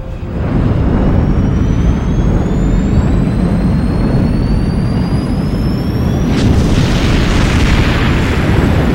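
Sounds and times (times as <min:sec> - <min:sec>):
rising engine-like whine: 0:00.0 - 0:08.9
starship sci-fi explosions rumbling: 0:00.0 - 0:08.9.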